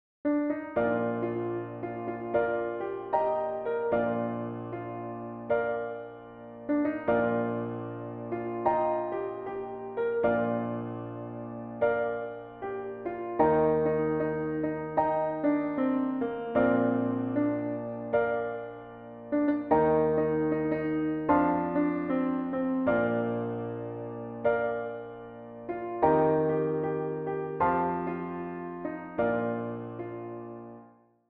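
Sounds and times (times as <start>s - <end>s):
piano in Bb: 0.2s - 31.2s.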